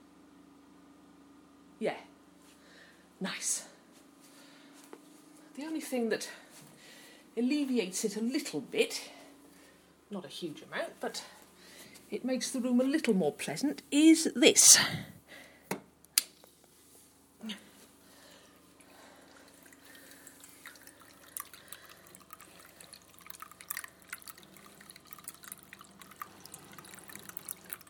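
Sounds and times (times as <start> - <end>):
speech: 1.8 - 2.1, 3.2 - 3.7, 5.6 - 6.4, 7.4 - 9.2, 10.1 - 11.4, 12.1 - 15.2
small indoor water feature dripping: 18.7 - 27.8.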